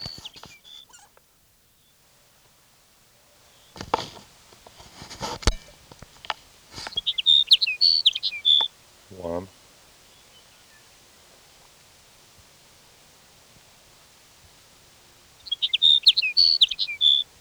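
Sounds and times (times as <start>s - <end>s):
sage sparrow singing: 0.0s - 1.1s, 3.4s - 9.4s, 15.3s - 17.3s.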